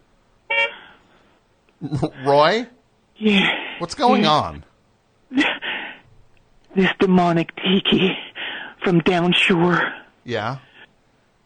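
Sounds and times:
short bright car horn honk: 0.5s - 0.8s
speech: 1.8s - 4.7s, 6.8s - 8.2s, 8.8s - 10.7s.

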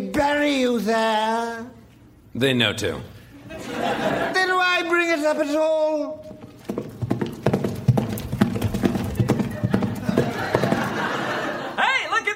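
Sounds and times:
speech: 0.2s - 1.8s, 2.4s - 4.3s, 5.2s - 6.3s
laughter: 3.4s - 4.9s, 9.1s - 12.3s
horse hooves clip-clopping: 6.2s - 11.1s.

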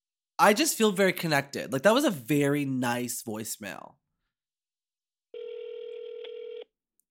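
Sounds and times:
speech: 0.4s - 4.0s
telephone call being dialed and ringing: 5.4s - 6.8s.

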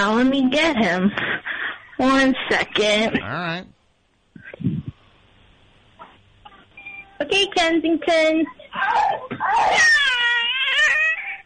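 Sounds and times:
speech: 0.0s - 3.7s, 7.2s - 10.2s
male cat meowing loudly: 9.4s - 11.1s.

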